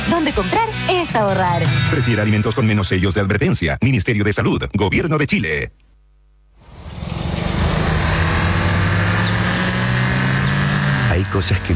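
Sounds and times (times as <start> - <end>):
speech: 0.1 - 5.8, 11.2 - 11.7
Audi Q5 2.0 TFSI mild hybrid engine drone: 6.6 - 11.7.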